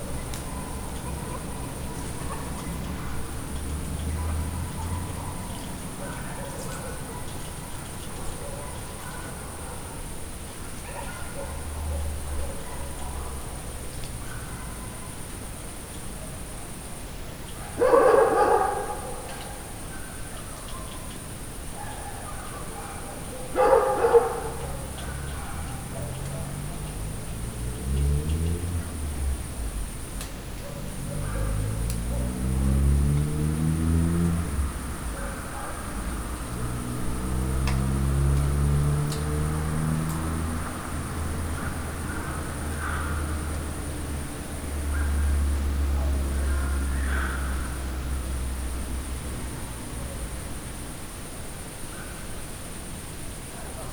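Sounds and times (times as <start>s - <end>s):
car in Perkupa: 0.0s - 53.9s
dog in Perkupa: 4.1s - 10.1s, 10.7s - 15.2s, 17.6s - 21.1s, 21.8s - 26.9s, 30.6s - 32.4s, 35.1s - 36.0s.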